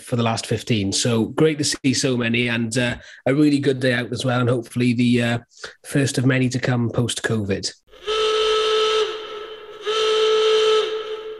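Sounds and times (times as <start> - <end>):
speech: 0.1 - 8.1
klaxon blasts: 7.9 - 11.3.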